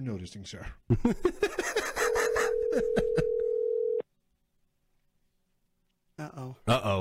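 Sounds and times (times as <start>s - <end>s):
bursts of laughter: 0.9s - 3.5s
outgoing telephone call ringing tone going unanswered: 2.1s - 4.0s.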